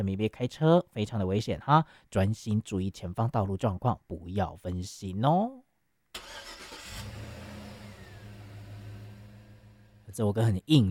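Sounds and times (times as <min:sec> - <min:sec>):
speech: 0:00.0 - 0:06.4, 0:10.1 - 0:10.8
car engine cranking, starting and idling: 0:06.2 - 0:10.2.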